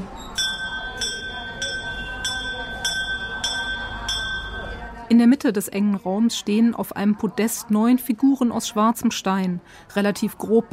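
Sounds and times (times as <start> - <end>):
low murmur of noise: 0.0 - 10.7
small shrine bell being struck: 0.2 - 5.0
speech: 5.1 - 10.7.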